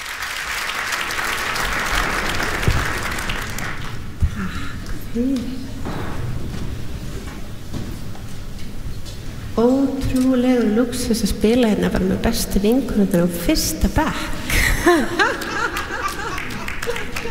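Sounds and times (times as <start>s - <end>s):
concert audience applauding for an encore: 0.0s - 4.2s, 15.2s - 17.2s
speech: 5.2s - 5.6s, 9.6s - 15.5s
laughter: 14.5s - 17.2s.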